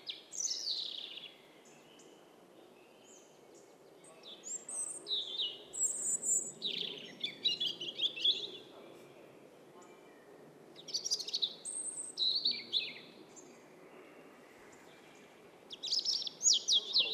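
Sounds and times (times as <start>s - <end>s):
European robin Erithacus rubecula singing warbled phrases: 0.0s - 1.3s, 4.0s - 8.7s, 10.8s - 13.1s, 15.7s - 17.1s.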